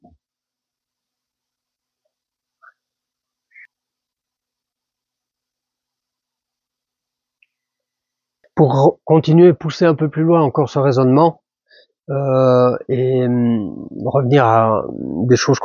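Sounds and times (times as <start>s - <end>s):
faint steady nighttime hiss: 0.0s - 15.6s
short frog calls at night: 3.5s - 3.7s
speech: 8.6s - 11.4s, 12.1s - 15.6s.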